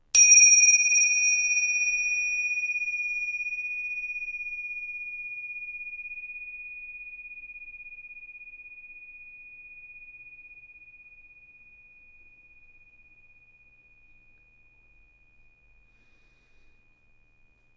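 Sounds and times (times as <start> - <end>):
meditation bell: 0.0 - 17.7.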